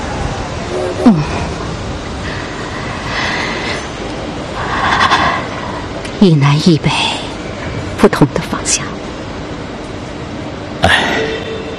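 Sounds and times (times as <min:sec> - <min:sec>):
passenger train departing from a railway station: 0:00.0 - 0:11.7
speech: 0:06.2 - 0:07.3, 0:08.0 - 0:08.9.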